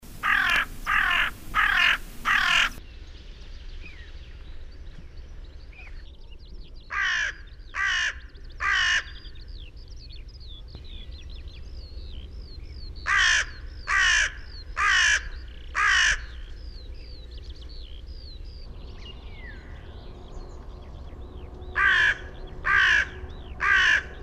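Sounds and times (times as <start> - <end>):
crow calling: 0.1 - 2.8, 6.9 - 9.3, 13.0 - 16.6, 21.8 - 24.2.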